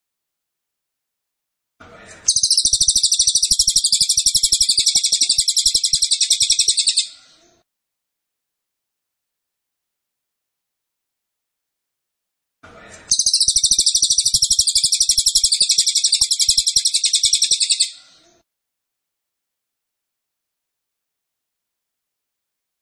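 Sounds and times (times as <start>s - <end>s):
cililin singing loud high rapid buzzy trill: 2.3s - 7.2s, 13.1s - 18.0s.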